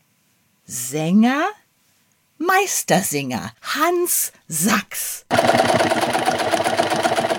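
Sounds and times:
speech: 0.7s - 1.6s, 2.4s - 7.0s
sewing machine running: 5.3s - 7.3s.

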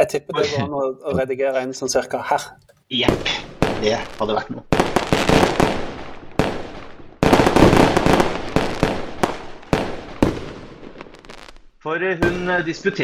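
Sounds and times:
speech: 0.0s - 4.9s, 11.8s - 13.0s
fireworks banging and crackling: 3.0s - 12.9s.

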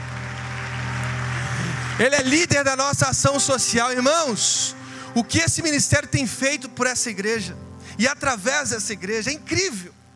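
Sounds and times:
audience applauding: 0.0s - 2.8s
speech: 2.0s - 10.0s.

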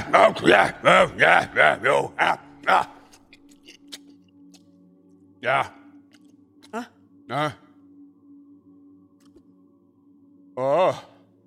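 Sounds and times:
speech: 0.1s - 3.0s, 5.4s - 5.8s, 6.7s - 7.6s, 10.6s - 11.1s
biting into and chewing a small banana: 2.9s - 4.7s.

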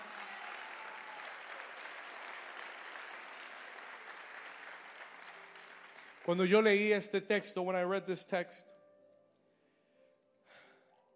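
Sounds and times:
large group applauding loudly: 0.0s - 6.9s
speech: 6.3s - 8.8s.

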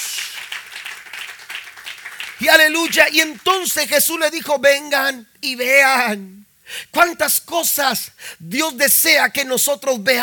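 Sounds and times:
crowd applauding: 0.0s - 3.6s
speech: 2.4s - 10.2s.

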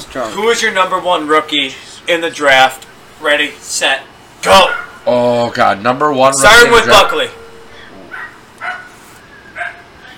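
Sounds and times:
speech: 0.1s - 7.4s
dog barking in short sharp yaps: 4.6s - 5.0s, 8.0s - 9.0s, 9.6s - 10.1s.

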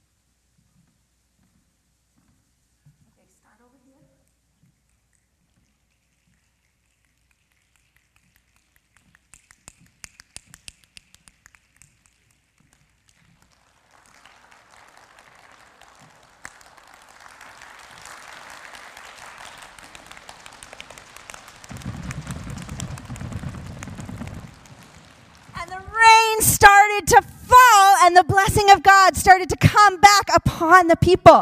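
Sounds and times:
crowd finger snaps imitating rain: 5.9s - 13.4s
crowd clapping imitating heavy rain: 7.2s - 28.1s
deep rumbling burst: 21.7s - 26.3s
speech: 26.4s - 27.3s, 28.0s - 31.4s.

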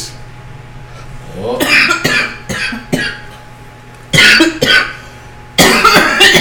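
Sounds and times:
person coughing: 1.6s - 3.4s, 4.1s - 5.0s, 5.6s - 6.4s.

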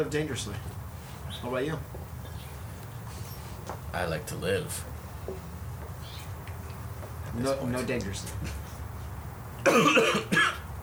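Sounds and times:
speech: 0.0s - 0.8s, 1.4s - 2.0s, 3.7s - 5.5s, 7.3s - 8.6s, 9.6s - 10.5s
person coughing: 9.6s - 10.6s.

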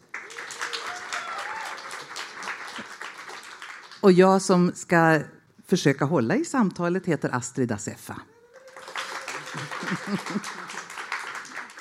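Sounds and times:
audience applauding as a speaker is introduced: 0.0s - 4.0s, 8.3s - 11.7s
speech: 4.0s - 8.4s, 9.6s - 10.7s
laughter: 8.4s - 11.7s.

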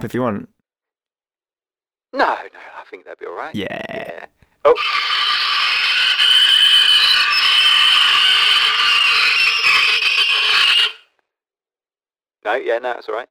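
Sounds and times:
speech: 0.0s - 0.6s, 2.1s - 5.5s, 12.4s - 13.2s
pole scraping along the side of a car: 4.8s - 11.0s.

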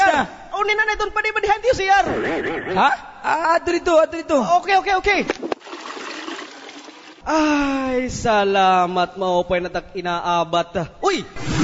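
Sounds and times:
speech: 0.2s - 5.6s, 7.2s - 11.6s
rushing water: 5.4s - 7.2s.

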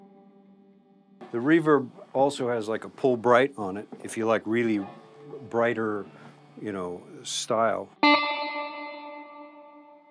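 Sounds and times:
sustained instrumental tone with heavy reverb: 0.0s - 1.8s, 4.6s - 10.0s
speech: 1.3s - 8.2s.

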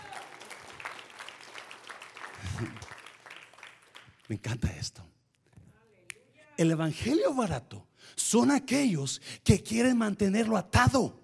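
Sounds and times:
church audience applauding during a sermon: 0.0s - 4.3s
speech: 4.3s - 5.1s, 6.6s - 11.2s.

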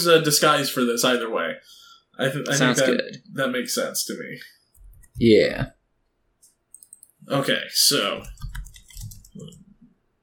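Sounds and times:
speech: 0.0s - 4.6s, 5.2s - 5.8s, 7.2s - 8.5s
typing on a computer keyboard: 4.8s - 5.3s, 6.7s - 7.2s, 8.0s - 9.8s.

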